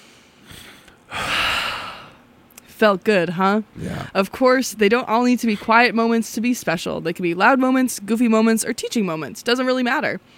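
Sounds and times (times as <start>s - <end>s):
group of people taking a deep breath together: 0.0s - 2.2s, 3.8s - 4.2s
speech: 2.8s - 10.3s.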